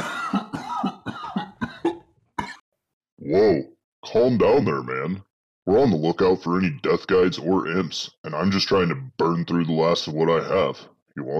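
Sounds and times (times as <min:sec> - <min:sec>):
person coughing while blowing out smoke: 0:00.0 - 0:02.6
speech: 0:03.3 - 0:11.3.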